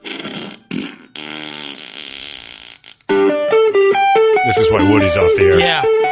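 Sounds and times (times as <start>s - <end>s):
auto-tuned fart sounds playing a rock riff: 0.0s - 3.4s
speech: 4.5s - 6.0s.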